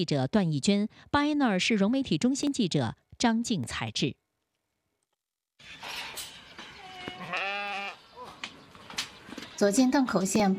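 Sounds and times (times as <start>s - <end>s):
speech: 0.0s - 4.2s, 9.6s - 10.5s
sheep bleating in a pen on a village farm in Dengkou County, Inner Mongolia: 6.8s - 8.0s.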